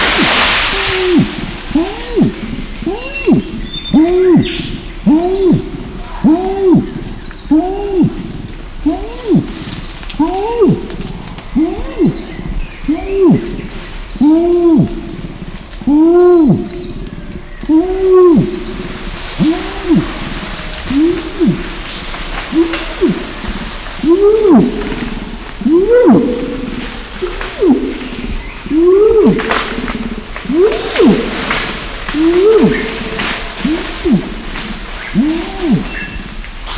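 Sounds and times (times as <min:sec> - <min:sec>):
long call: 0:00.2 - 0:13.7, 0:15.9 - 0:36.2.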